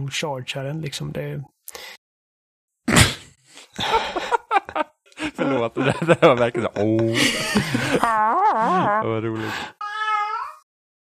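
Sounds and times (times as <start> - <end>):
speech: 0.0 - 2.0, 5.4 - 9.8
laughter: 3.8 - 9.4
cat meowing: 9.8 - 10.7.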